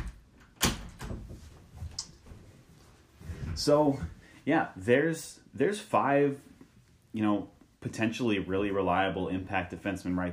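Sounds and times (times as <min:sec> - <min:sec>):
door swinging shut with a solid thump: 0:00.0 - 0:01.4
speech: 0:03.6 - 0:06.5, 0:07.1 - 0:10.3.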